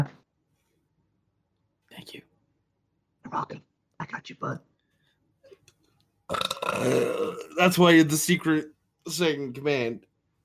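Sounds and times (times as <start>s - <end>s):
speech: 3.3s - 4.7s, 6.3s - 10.1s
loud drawn-out burp: 6.3s - 7.8s.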